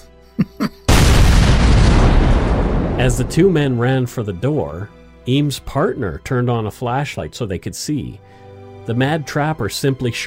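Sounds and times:
dynamite blast thrown at a cabin's front door: 0.9 - 4.1
speech: 3.0 - 10.2.

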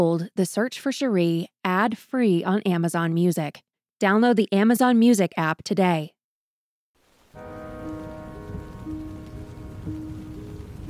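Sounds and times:
speech: 0.0 - 6.2
light rain pattering: 7.0 - 10.8
low sustained musical drone: 7.4 - 10.8.

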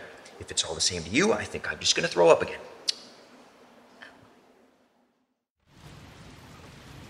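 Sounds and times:
speech: 0.4 - 2.7
steady rain pattering on a 10x10 tent: 5.6 - 7.0.

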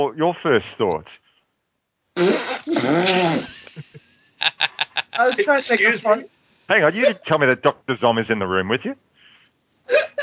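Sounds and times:
speech: 0.0 - 1.3, 2.2 - 9.1, 9.9 - 10.2
woman blowing a raspberry imitating a fart: 2.2 - 3.7
laughter: 3.2 - 6.2, 9.9 - 10.2.

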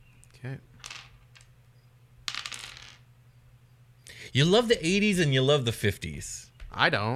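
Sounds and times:
faint low hum: 0.0 - 7.1
speech: 0.4 - 0.8, 4.3 - 7.1
percentile dice clattering across a hard tabletop: 0.8 - 1.6, 2.2 - 3.1.

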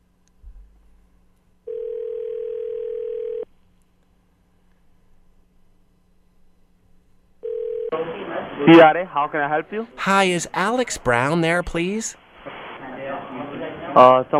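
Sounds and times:
telephone dial tone on a handset: 1.7 - 3.5, 7.4 - 8.0
speech: 8.6 - 12.2, 14.0 - 14.3.

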